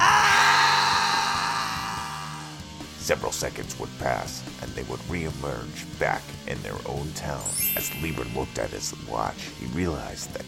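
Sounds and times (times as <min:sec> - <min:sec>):
several people screaming together: 0:00.0 - 0:02.5
speech: 0:03.1 - 0:10.4.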